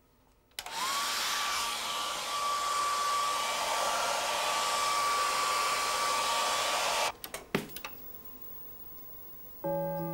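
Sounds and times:
hair dryer blowing: 0:00.6 - 0:07.1.

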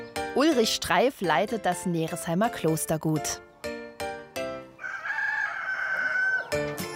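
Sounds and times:
speech: 0:00.4 - 0:03.5
chickens clucking: 0:04.7 - 0:06.9
rooster crowing: 0:04.8 - 0:06.8.

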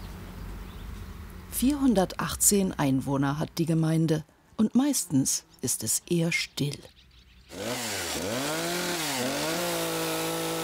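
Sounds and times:
speech: 0:01.6 - 0:07.9
chainsaw cutting wood for a sculpture: 0:07.5 - 0:10.6.

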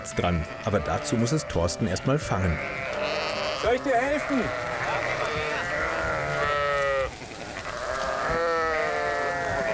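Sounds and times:
noisy farmyard background: 0:00.0 - 0:09.7
speech: 0:00.1 - 0:05.4
sheep bleating during hoof trimming: 0:00.1 - 0:09.7.

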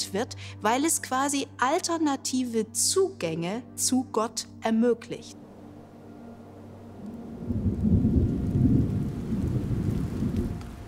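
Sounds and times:
speech: 0:00.1 - 0:05.4
steady rain pouring: 0:05.5 - 0:10.8
low continuous rumble of thunder: 0:06.8 - 0:10.8.

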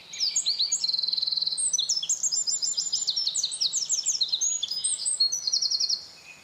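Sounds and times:
Eurasian wren singing rhythmic trills: 0:00.0 - 0:06.4.

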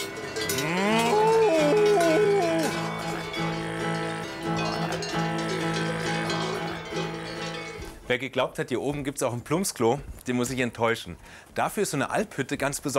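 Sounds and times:
large cowbells clanging as cows move: 0:00.0 - 0:08.0
cow lowing: 0:00.4 - 0:07.6
speech: 0:08.1 - 0:12.9.

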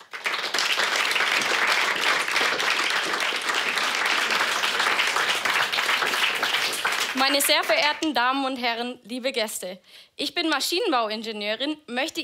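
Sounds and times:
audience applause for a speaker: 0:00.0 - 0:07.9
speech: 0:07.2 - 0:12.2.

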